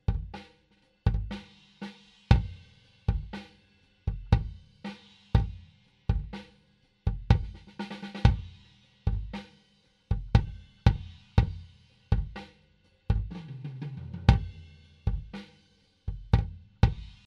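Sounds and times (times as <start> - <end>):
kick drum: 0.0 - 0.4, 1.1 - 1.4, 2.3 - 3.4, 4.1 - 6.4, 7.1 - 9.4, 10.1 - 12.5, 13.1 - 13.4, 14.2 - 15.4, 16.1 - 17.2.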